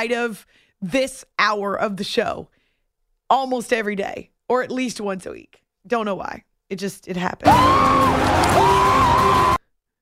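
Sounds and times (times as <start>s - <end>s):
speech: 0.0s - 2.6s, 3.3s - 9.5s
crowd roar: 7.5s - 9.6s
man shrieking: 7.5s - 9.6s.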